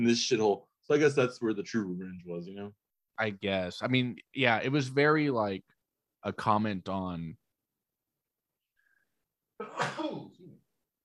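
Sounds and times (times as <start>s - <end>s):
speech: 0.0s - 7.4s
person sneezing: 9.6s - 10.5s.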